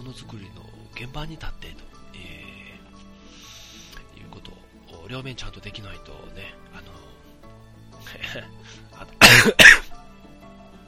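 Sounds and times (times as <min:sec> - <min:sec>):
speech: 0:00.1 - 0:02.4, 0:05.1 - 0:07.2, 0:08.1 - 0:09.8
person with a cold clearing their throat: 0:09.2 - 0:10.0.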